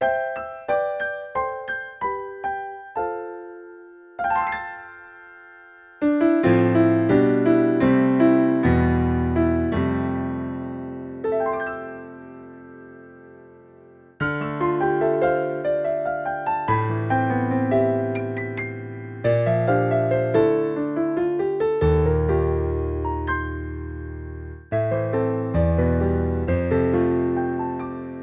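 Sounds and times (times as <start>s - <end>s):
Yamaha NP-30 grand piano playing demo songs: 0.0s - 28.2s.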